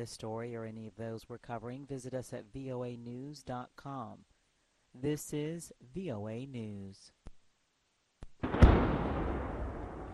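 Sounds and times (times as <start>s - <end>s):
speech: 0.0s - 4.3s, 5.0s - 7.2s
sharp crack: 8.2s - 10.1s
explosion booming: 8.4s - 10.1s.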